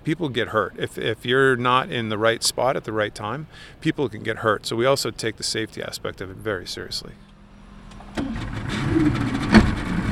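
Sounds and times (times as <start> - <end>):
speech: 0.0 - 7.3
small motorboat engine running: 7.2 - 10.1.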